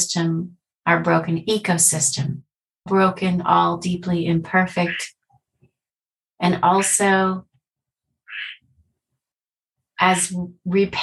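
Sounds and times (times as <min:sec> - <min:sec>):
speech: 0:00.1 - 0:05.2, 0:06.4 - 0:07.5, 0:10.0 - 0:11.0
frog call: 0:04.7 - 0:05.1, 0:08.2 - 0:08.7.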